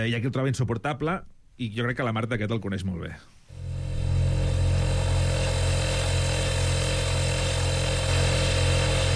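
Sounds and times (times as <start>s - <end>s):
speech: 0.0s - 3.4s
appliance motor humming: 3.5s - 9.1s.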